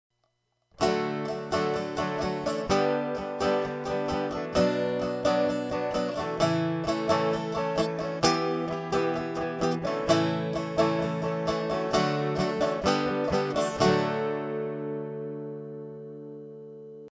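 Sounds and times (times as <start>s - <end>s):
guitar playing in D: 0.8s - 17.1s.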